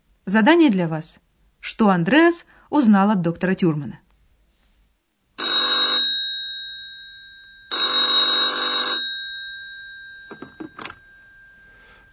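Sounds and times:
speech: 0.3 - 4.0
telephone ringing: 5.4 - 12.1
telephone receiver clicks as it is picked up: 10.3 - 11.0.

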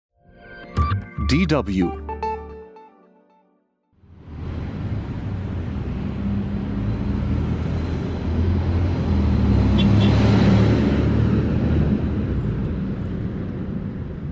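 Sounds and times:
speech: 1.3 - 2.0
dense rush hour traffic roar on a busy city street: 4.0 - 14.3
vehicle passing by: 4.1 - 14.2.

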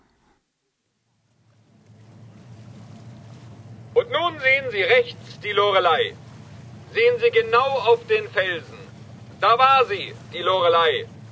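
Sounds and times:
passenger boat engine drone on the Rhine: 0.0 - 11.2
rushing water from a passenger boat on the Rhine: 1.1 - 11.2
speech: 4.0 - 6.2, 6.9 - 8.8, 9.4 - 11.2.

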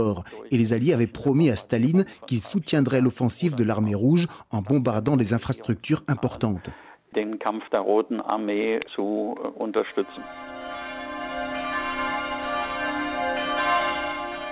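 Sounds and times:
speech: 0.0 - 10.9
church bells ringing: 10.0 - 14.5.

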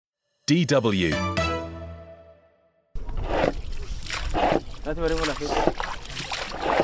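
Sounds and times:
musical tone: 0.4 - 2.9
speech: 0.5 - 1.4, 4.9 - 6.0
small bowl scooping and splashing water out of a leaking fishing boat on a river: 3.0 - 6.8.

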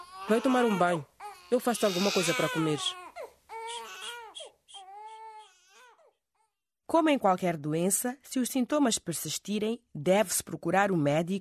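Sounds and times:
baby wailing loudly: 0.0 - 6.6
speech: 0.3 - 3.0, 6.9 - 11.3.

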